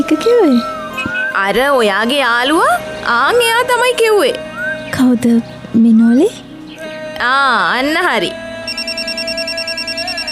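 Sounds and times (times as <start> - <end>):
speech: 0.0 - 0.8, 1.4 - 6.4, 7.2 - 8.4
telephone ringing with an electronic trill: 8.6 - 10.3.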